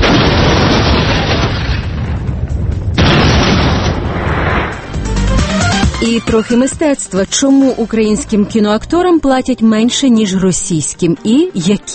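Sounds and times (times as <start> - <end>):
explosion of the first Soviet nuclear test, archival recording: 0.0 - 5.6
speech: 6.0 - 11.9.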